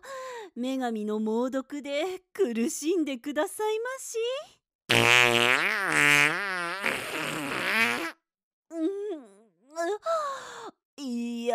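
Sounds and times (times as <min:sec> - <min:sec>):
speech: 0:00.6 - 0:07.0, 0:09.8 - 0:11.5
long buzzy fart and squeaky toots: 0:04.9 - 0:08.2.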